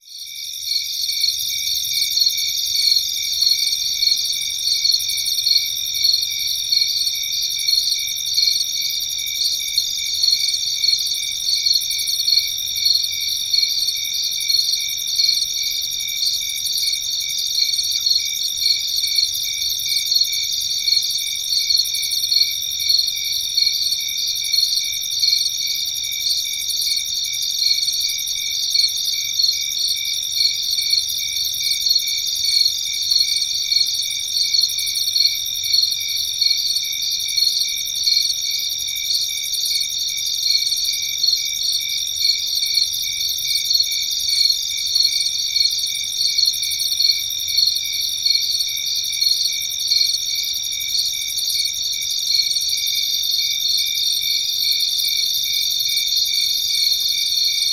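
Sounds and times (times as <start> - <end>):
tireless crickets chirping: 0.0 - 57.7.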